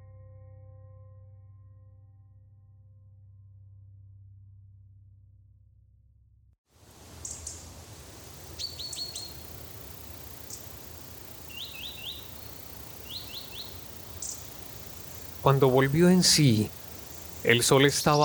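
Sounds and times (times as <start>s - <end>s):
steady low outdoor rumble: 7.0s - 18.1s
small birds chirping in a forest: 7.0s - 18.2s
speech: 15.4s - 16.8s, 17.4s - 18.2s.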